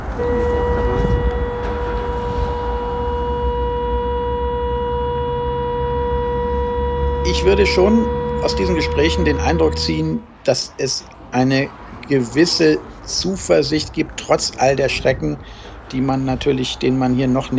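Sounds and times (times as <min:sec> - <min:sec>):
air raid siren in Chernivtsi Ukraine during Russian bombing: 0:00.2 - 0:10.3
speech: 0:07.3 - 0:17.5.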